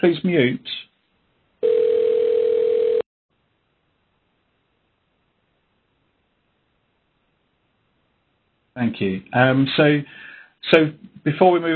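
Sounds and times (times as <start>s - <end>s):
speech: 0.0s - 0.9s, 8.8s - 11.7s
electronic phone-call tone over speakers during a meeting: 1.6s - 3.0s.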